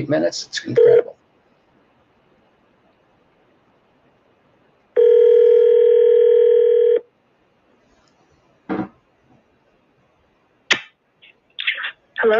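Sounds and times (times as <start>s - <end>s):
speech: 0.0s - 1.1s
steady telephone dial tone: 0.8s - 1.1s, 5.0s - 7.0s.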